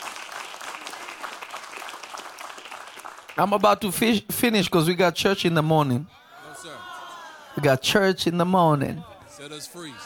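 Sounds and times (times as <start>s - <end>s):
congregation clapping together: 0.0s - 4.0s
speech: 3.4s - 6.2s, 7.6s - 10.0s.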